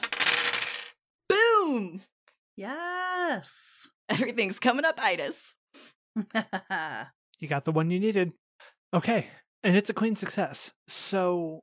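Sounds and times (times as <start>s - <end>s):
four dice rattling: 0.0s - 1.0s
speech: 1.8s - 5.6s, 6.2s - 11.6s.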